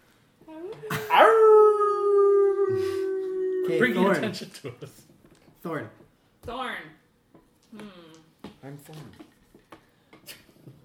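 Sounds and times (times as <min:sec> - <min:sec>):
speech: 0:00.5 - 0:01.2, 0:03.7 - 0:06.9, 0:08.7 - 0:09.3
person imitating a werewolf howl: 0:00.5 - 0:04.2.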